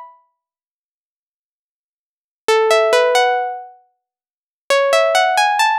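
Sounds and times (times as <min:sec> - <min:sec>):
dry synth pluck melody in F sharp minor at 135 BPM: 0:02.7 - 0:03.7, 0:04.7 - 0:05.7.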